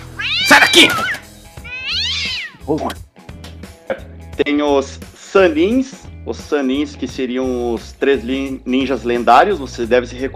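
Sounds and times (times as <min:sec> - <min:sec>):
cat meowing: 0:00.0 - 0:02.7
speech: 0:00.7 - 0:01.2, 0:02.7 - 0:03.1, 0:03.9 - 0:10.3.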